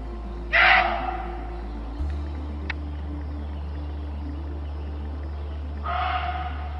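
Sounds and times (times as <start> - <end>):
steady low hum: 0.0 - 6.7
muntjac deer screaming: 0.5 - 1.4, 5.8 - 6.7.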